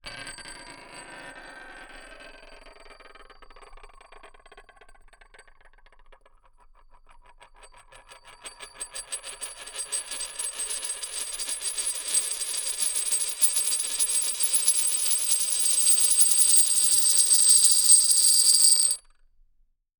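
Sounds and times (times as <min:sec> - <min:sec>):
extra large coin spinning on a stone surface, bright and ringing: 0:00.1 - 0:04.6, 0:08.8 - 0:19.0.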